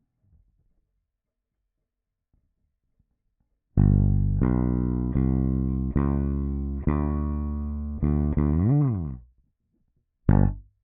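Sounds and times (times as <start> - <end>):
rock and roll piano bass line: 3.8 - 9.2, 10.3 - 10.6.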